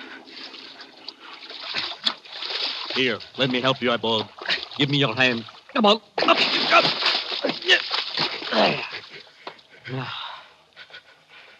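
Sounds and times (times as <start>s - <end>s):
water lapping and sloshing against a small boat: 0.0s - 9.8s
sharp splashes: 0.2s - 9.2s
speech: 3.0s - 7.0s, 8.6s - 8.9s, 9.9s - 10.2s.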